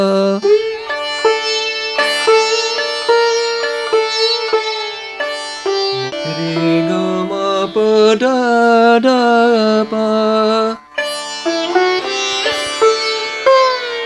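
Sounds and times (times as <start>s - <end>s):
cithara playing: 0.2s - 14.0s.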